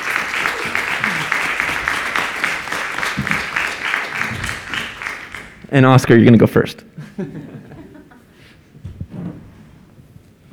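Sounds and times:
laughter: 0:00.0 - 0:05.7, 0:06.8 - 0:08.7
audience clapping for panelists of a panel event: 0:00.0 - 0:06.5
speech: 0:05.7 - 0:07.6.

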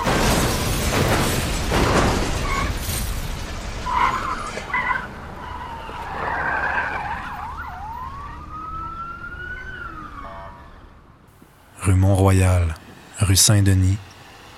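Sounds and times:
car crash: 0:00.0 - 0:08.0
car tires screeching in a skid: 0:01.0 - 0:11.8
siren wailing in rising and falling sweeps: 0:03.9 - 0:11.2
speech: 0:12.1 - 0:14.0.

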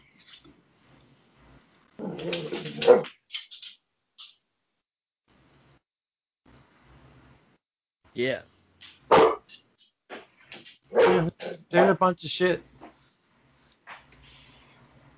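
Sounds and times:
speech: 0:02.0 - 0:03.2, 0:08.2 - 0:08.9, 0:11.7 - 0:12.7
dog barking: 0:02.7 - 0:03.1, 0:09.1 - 0:09.5, 0:10.9 - 0:11.9.

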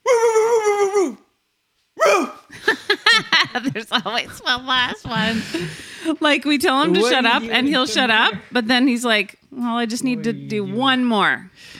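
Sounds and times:
person imitating a dog barking: 0:00.0 - 0:01.2, 0:02.0 - 0:02.5
laughter: 0:02.5 - 0:08.6
speech: 0:03.6 - 0:11.7.

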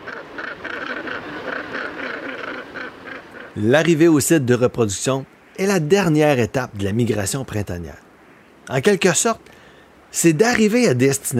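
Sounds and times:
Northern Gannet harsh grating calls at a cliff nesting colony: 0:00.0 - 0:04.2, 0:08.1 - 0:08.6
dense background noise: 0:00.0 - 0:11.3
speech: 0:03.6 - 0:08.1, 0:08.7 - 0:11.3.

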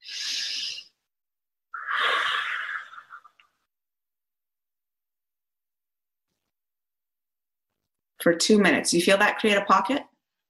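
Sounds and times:
breathing in through nose: 0:00.0 - 0:01.0, 0:01.8 - 0:03.3
long airy exhalation: 0:01.8 - 0:03.4
speech: 0:08.2 - 0:10.1.

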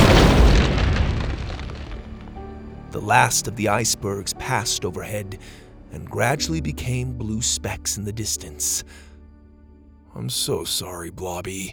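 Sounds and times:
robot exploding in a blast of fire and ice: 0:00.0 - 0:04.0
speech: 0:02.9 - 0:09.1, 0:10.1 - 0:11.7.

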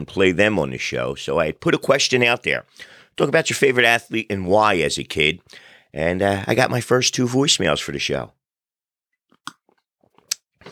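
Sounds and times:
speech: 0:00.0 - 0:08.4
person sipping coffee with wet slurping and swallowing: 0:09.4 - 0:10.7.

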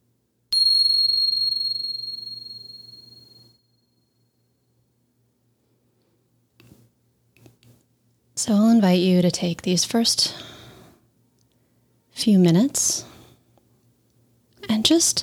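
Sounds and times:
single bright bell ringing: 0:00.6 - 0:03.4
speech: 0:08.4 - 0:10.5, 0:12.2 - 0:13.1, 0:14.9 - 0:15.2.

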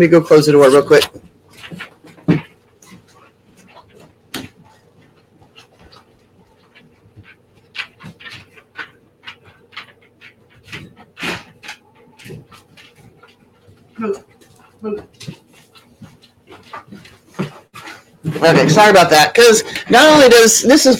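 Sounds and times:
speech: 0:00.0 - 0:02.4, 0:14.0 - 0:14.2, 0:18.4 - 0:20.9
dog panting and snorting: 0:01.5 - 0:18.4.

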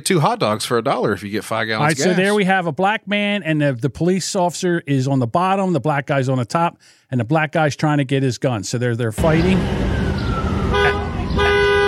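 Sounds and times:
speech: 0:00.0 - 0:10.0
steady hum of vehicle noise: 0:09.2 - 0:11.8
car horn honking: 0:10.6 - 0:11.8.

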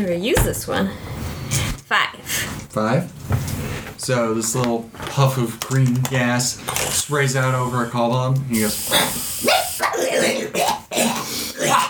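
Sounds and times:
speech: 0:00.0 - 0:03.4, 0:04.0 - 0:10.7
man's voice imitating a creature's hacking cough: 0:09.8 - 0:11.8.

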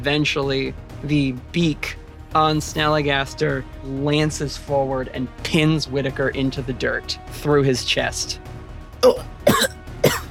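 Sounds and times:
speech: 0:00.0 - 0:09.7
person acting out a wounded character coughing up blood: 0:09.0 - 0:10.3.

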